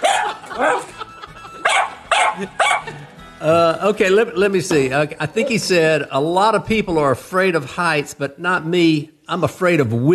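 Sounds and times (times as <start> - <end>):
dog barking: 0.0 - 1.0, 1.6 - 2.9
laughter: 0.0 - 5.8
speech: 3.4 - 10.1.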